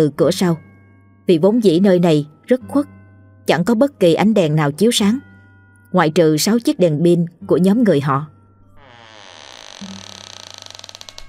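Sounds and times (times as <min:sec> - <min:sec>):
speech: 0:00.0 - 0:00.7, 0:01.3 - 0:05.3, 0:05.9 - 0:08.3
back door of a house creaking open: 0:08.8 - 0:11.2.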